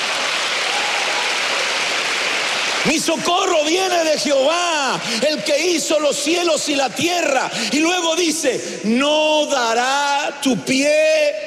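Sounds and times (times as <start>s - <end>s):
congregation applauding: 0.0s - 5.5s
speech: 2.8s - 11.4s.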